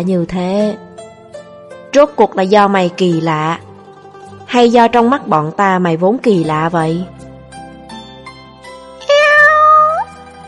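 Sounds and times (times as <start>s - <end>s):
speech: 0.0s - 0.9s, 2.0s - 3.7s, 4.5s - 7.2s
black cat meowing: 9.0s - 10.2s.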